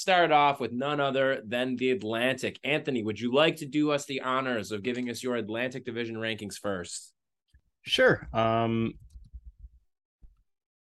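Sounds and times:
speech: 0.0s - 7.2s, 7.8s - 9.0s
soft keyboard typing: 8.9s - 9.8s.

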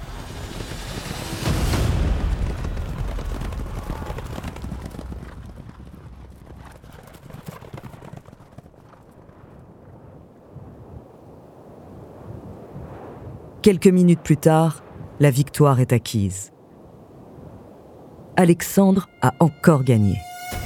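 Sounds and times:
galloping horses fleeing a battle: 0.0s - 10.0s
speech: 13.6s - 16.6s, 18.4s - 20.3s.

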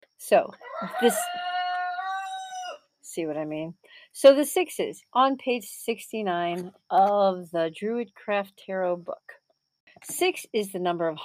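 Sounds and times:
speech: 0.2s - 1.5s, 3.2s - 9.4s, 10.0s - 11.2s
rooster crowing cock-a-doodle-doo: 0.6s - 2.8s.

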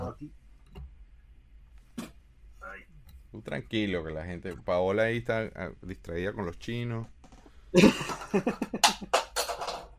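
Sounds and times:
speech: 0.2s - 0.4s, 3.3s - 9.2s
laughter: 7.8s - 9.1s
small plastic toy figure toppling over: 9.1s - 9.9s.

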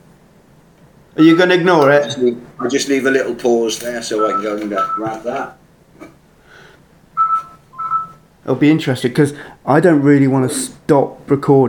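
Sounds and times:
room noise: 0.0s - 11.6s
phone ringing with a short loud electronic tone: 1.2s - 5.6s, 7.2s - 8.3s
speech: 1.2s - 6.1s, 8.5s - 11.6s.

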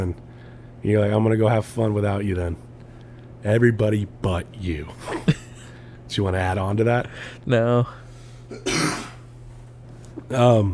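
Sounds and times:
speech: 0.0s - 2.7s, 3.4s - 5.3s, 6.1s - 9.1s, 10.3s - 10.7s
steady low hum: 0.0s - 10.7s
person clearing throat: 8.5s - 9.3s
person coughing: 8.5s - 9.3s.

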